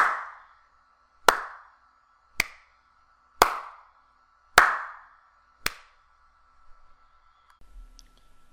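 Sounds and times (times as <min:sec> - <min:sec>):
hand claps recorded with a condenser microphone: 0:00.0 - 0:00.5, 0:01.3 - 0:01.8, 0:02.4 - 0:02.7, 0:03.4 - 0:03.9, 0:04.6 - 0:06.0.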